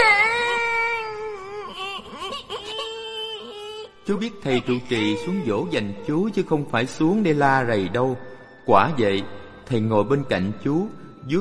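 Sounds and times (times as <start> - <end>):
young boy novice sobbing while hugging a pillow: 0.0 - 6.1
speech: 4.1 - 11.3.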